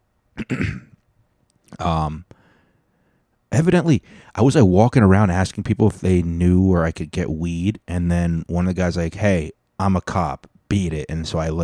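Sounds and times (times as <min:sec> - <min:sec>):
loud throat clearing: 0:00.4 - 0:01.0
speech: 0:00.5 - 0:00.8, 0:01.8 - 0:02.3, 0:03.5 - 0:11.6.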